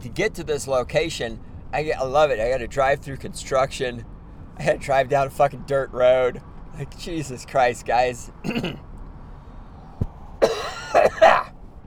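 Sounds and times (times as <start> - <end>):
speech: 0.0 - 8.9
person coughing rough throaty coughs: 8.4 - 8.8, 10.4 - 11.5
soft thump: 10.0 - 10.2.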